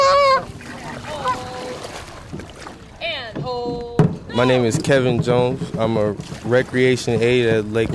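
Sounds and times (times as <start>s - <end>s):
flock of geese honking: 0.0s - 1.7s
speech: 4.4s - 7.9s.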